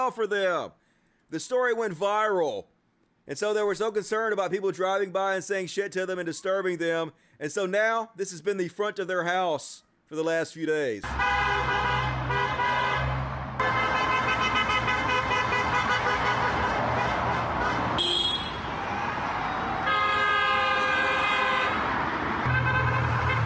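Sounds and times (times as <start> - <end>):
speech: 0.0 - 11.7
car horns honking while driving past: 11.0 - 18.8, 19.8 - 23.4
steady traffic rumble: 11.0 - 23.4.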